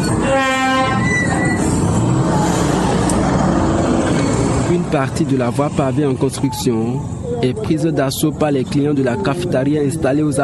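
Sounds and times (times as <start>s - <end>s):
motorbikes and vehicle traffic roaring at bus station: 0.0s - 10.4s
horn blaring: 0.1s - 1.7s
speech: 4.9s - 10.4s.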